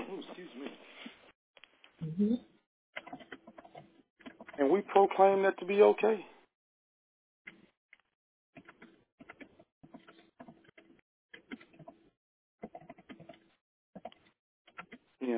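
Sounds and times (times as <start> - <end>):
speech: 2.2 - 2.5, 4.6 - 6.3
rapid keyboard typing heard through an unmuted phone: 3.0 - 4.6, 8.6 - 15.0.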